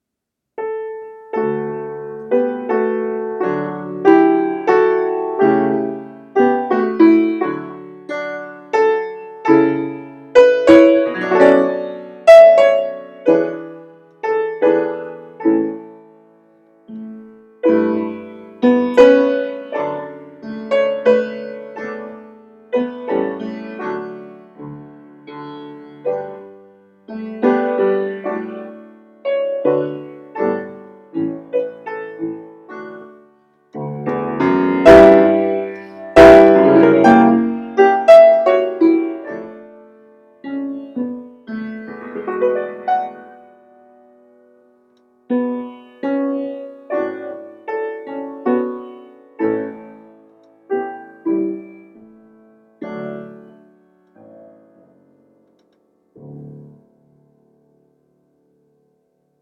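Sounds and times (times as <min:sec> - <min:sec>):
improvised piano in D major, holiday mashup: 0:00.6 - 0:59.4.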